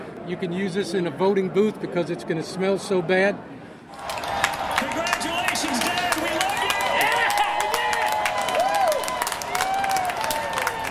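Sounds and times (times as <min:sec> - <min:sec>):
speech: 0:00.3 - 0:04.2
outdoor crowd of supporters cheering and clapping: 0:03.9 - 0:10.8
scattered shouts from the crowd: 0:04.4 - 0:10.8.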